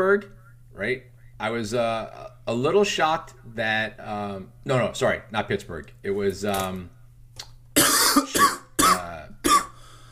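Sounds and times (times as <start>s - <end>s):
speech: 0.0s - 7.0s
harsh coughing fit: 7.8s - 9.8s.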